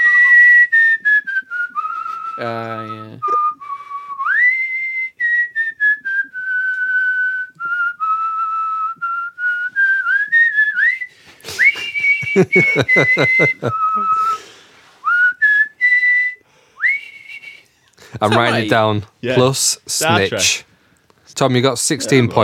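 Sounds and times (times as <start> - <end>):
person whistling a tune: 0.0 - 17.7
speech: 2.4 - 3.4, 12.4 - 14.5, 18.2 - 20.7, 21.4 - 22.4
laughter: 11.5 - 14.1, 18.0 - 20.3.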